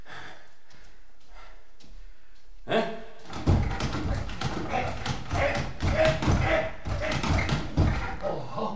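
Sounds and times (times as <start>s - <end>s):
locked door being shoved and rattled: 3.3s - 8.2s.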